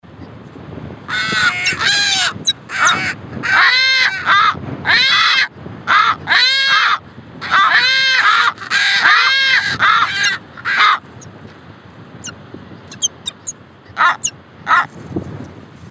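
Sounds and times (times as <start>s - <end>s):
caracara calling: 1.1s - 11.1s, 12.2s - 14.9s.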